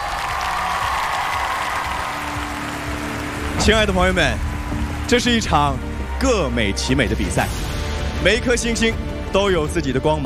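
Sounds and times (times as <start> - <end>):
audience applause at an international singing competition: 0.0 - 6.1
speech: 3.7 - 10.2.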